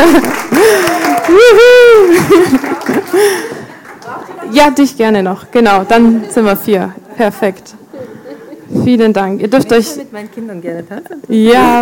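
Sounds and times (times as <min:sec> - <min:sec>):
audience clapping for volunteers coming up on stage: 0:00.0 - 0:04.5
laughter: 0:00.0 - 0:04.6, 0:07.9 - 0:08.8, 0:10.9 - 0:11.8
speech: 0:00.1 - 0:00.4, 0:04.6 - 0:08.1, 0:08.7 - 0:11.8
person cheering with drawn-out sliding cheers: 0:00.1 - 0:03.0.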